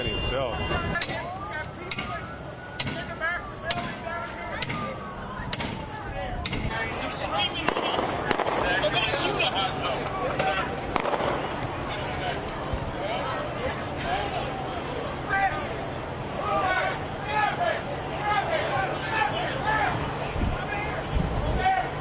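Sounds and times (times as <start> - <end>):
murmuring voices: 0.0 - 21.9
speech: 0.4 - 1.4
gunshots: 7.6 - 9.4, 10.9 - 11.6.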